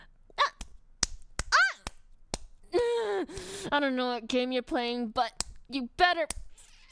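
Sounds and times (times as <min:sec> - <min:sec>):
sharp slaps with an object: 0:00.5 - 0:02.6, 0:05.3 - 0:05.7
short high-pitched vocal yelps and exclamations: 0:01.5 - 0:01.9
speech: 0:03.6 - 0:06.4.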